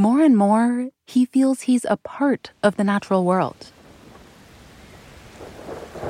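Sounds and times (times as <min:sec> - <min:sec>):
speech: 0:00.0 - 0:03.8
wind-driven rain: 0:02.5 - 0:06.0
low rumbling thunder: 0:03.8 - 0:06.0.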